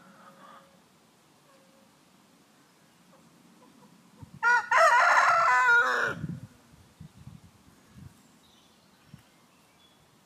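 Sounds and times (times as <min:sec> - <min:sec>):
chicken crowing: 0:04.4 - 0:06.3.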